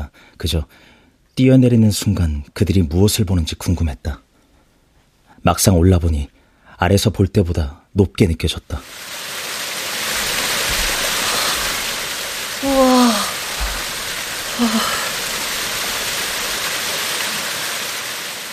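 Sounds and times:
speech: 0.4 - 4.2, 5.4 - 9.1
waterfall roaring: 8.8 - 18.5
voice giving short amazed exclamations: 12.6 - 13.6, 14.5 - 15.2.

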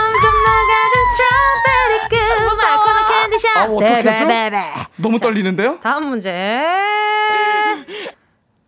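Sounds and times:
sustained gently rising vocal tone: 0.1 - 3.4
speech: 3.6 - 8.2.

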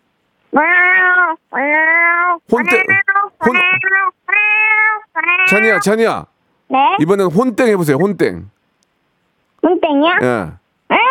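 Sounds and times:
speech: 0.5 - 0.8, 2.5 - 3.6, 5.5 - 8.6, 9.6 - 11.0
person imitating a cat meow: 0.6 - 5.9, 9.8 - 11.0.

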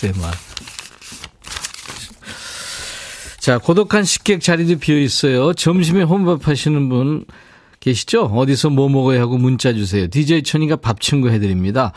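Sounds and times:
speech: 0.0 - 0.8, 3.4 - 11.9
paper tearing: 0.0 - 2.2
paper crumpling and crinkling: 0.0 - 5.1.

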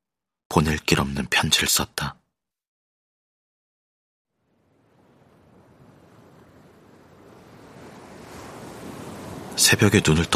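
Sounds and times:
speech: 0.6 - 2.2, 9.6 - 10.3
gentle sea waves lapping: 4.3 - 10.3.

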